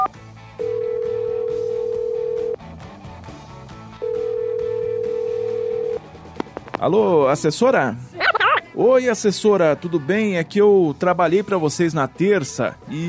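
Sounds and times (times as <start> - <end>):
telephone line tones as a call is placed on a studio phone line: 0.0 - 2.6, 4.0 - 6.0
speech: 6.8 - 8.1, 8.8 - 13.0.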